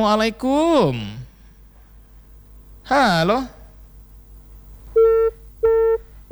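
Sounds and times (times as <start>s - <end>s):
speech: 0.0s - 1.2s, 2.9s - 3.6s
faint hum: 0.0s - 6.2s
telephone busy tone on a listener call-in line: 4.9s - 6.2s.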